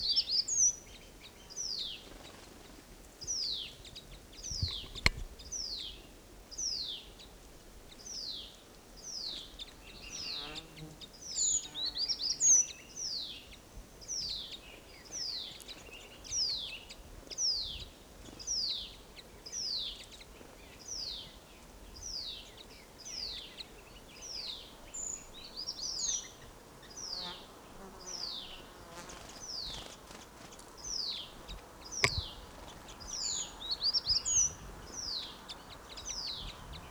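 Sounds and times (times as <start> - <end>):
flock of birds chirping: 0.0 - 36.9.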